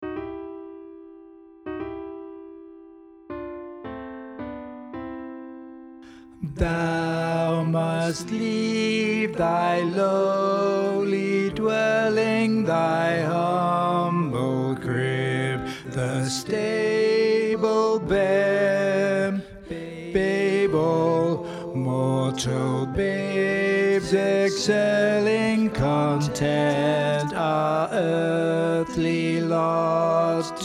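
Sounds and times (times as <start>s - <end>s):
alto part of a choral piece: 6.4s - 30.6s.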